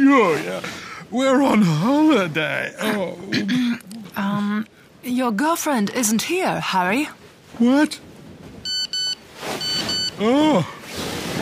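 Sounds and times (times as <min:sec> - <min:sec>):
low hiss: 0:00.0 - 0:11.3
speech: 0:00.1 - 0:08.0, 0:10.2 - 0:11.1
phone text-message alert beeps: 0:08.6 - 0:10.2.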